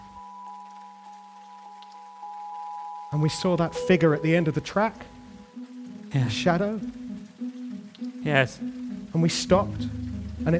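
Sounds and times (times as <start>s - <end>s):
steady rain falling in the high hills: 0.0s - 10.5s
speech: 3.1s - 5.2s, 6.1s - 7.0s, 8.2s - 10.5s.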